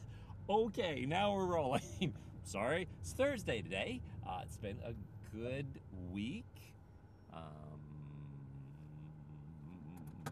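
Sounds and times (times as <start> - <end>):
faint road noise: 0.0 - 10.3
speech: 0.5 - 7.9
car engine droning past: 7.3 - 10.3.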